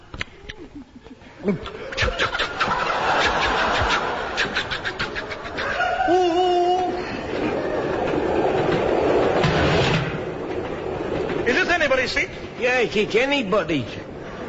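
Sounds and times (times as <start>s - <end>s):
laughter: 0.3s - 9.4s, 14.0s - 14.4s
speech: 1.4s - 1.8s, 12.0s - 14.0s
train running on rails: 6.0s - 14.4s.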